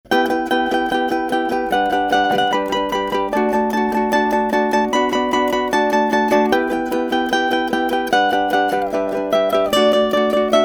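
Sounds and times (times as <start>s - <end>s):
ukulele combined picking: 0.0s - 10.6s.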